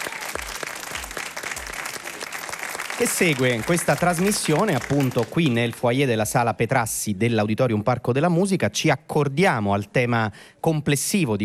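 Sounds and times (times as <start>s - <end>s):
live audience applauding in a concert hall foyer during a book festival event: 0.0s - 5.8s
speech: 3.0s - 11.4s.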